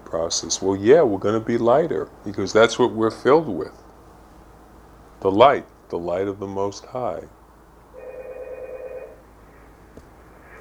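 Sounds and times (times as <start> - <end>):
quiet room noise: 0.0 - 10.5
speech: 0.1 - 3.8, 5.2 - 7.4
telephone ringing with a steady electronic tone: 7.9 - 9.7.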